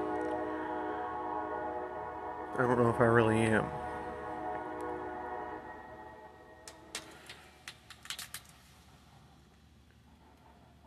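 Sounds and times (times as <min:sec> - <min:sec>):
passing train horn multi-tone blast: 0:00.0 - 0:07.1
rumbling rail noise of a passing train: 0:00.0 - 0:10.8
speech: 0:02.6 - 0:03.8.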